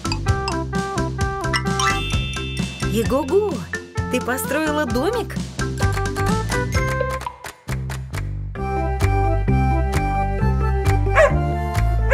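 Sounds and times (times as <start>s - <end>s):
bright steady music: 0.0s - 12.1s
speech: 3.0s - 5.4s
small dog yipping and barking: 11.2s - 11.4s.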